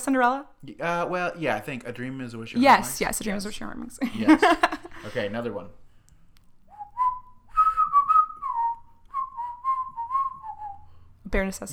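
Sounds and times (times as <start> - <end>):
speech: 0.0 - 5.8, 11.3 - 11.7
laughter: 4.0 - 5.4
person whistling a short tune: 6.7 - 11.0.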